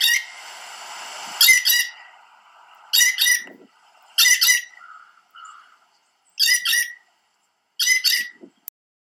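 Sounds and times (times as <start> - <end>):
blue jay calling with raspy paired notes: 0.0 - 0.4, 1.4 - 2.1, 2.9 - 7.2, 7.8 - 8.5.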